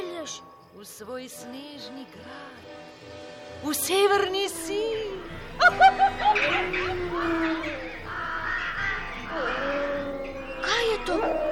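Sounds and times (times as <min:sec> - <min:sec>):
speech: 0:00.2 - 0:07.7
wavering tonal calls: 0:04.3 - 0:11.5
laughter: 0:05.5 - 0:10.0
crows cawing: 0:05.7 - 0:11.5.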